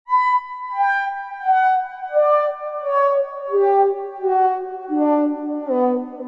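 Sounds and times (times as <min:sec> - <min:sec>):
descending plaintive synth: 0:00.1 - 0:06.2.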